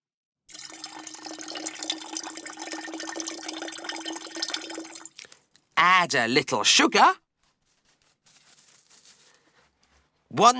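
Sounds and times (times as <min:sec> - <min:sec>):
milk pouring into a mixer: 0:00.5 - 0:05.3
speech: 0:05.8 - 0:07.2, 0:10.4 - 0:10.5.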